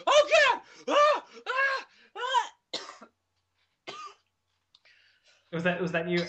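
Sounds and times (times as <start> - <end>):
person coughing: 0.0 - 3.1, 3.9 - 4.2
speech: 5.6 - 6.2.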